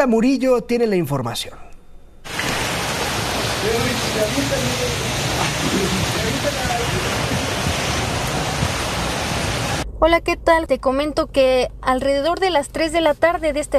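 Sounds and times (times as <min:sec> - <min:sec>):
speech: 0:00.0 - 0:01.7, 0:03.6 - 0:07.1, 0:10.0 - 0:13.7
heavy rainstorm pouring down on flooded streets: 0:02.3 - 0:09.8.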